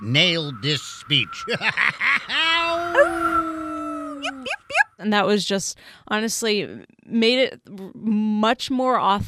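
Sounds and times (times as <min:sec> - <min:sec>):
speech: 0:00.0 - 0:03.5, 0:04.2 - 0:09.2
laughter: 0:01.4 - 0:03.0, 0:04.1 - 0:05.0
man imitating dog yips and howl: 0:02.1 - 0:04.8.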